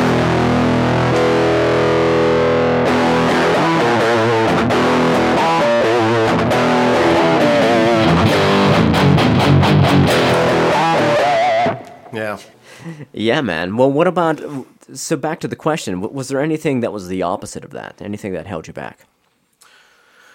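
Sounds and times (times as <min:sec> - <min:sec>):
heavily distorted electric guitar power chords with high gain: 0:00.0 - 0:12.1
speech: 0:12.3 - 0:19.2.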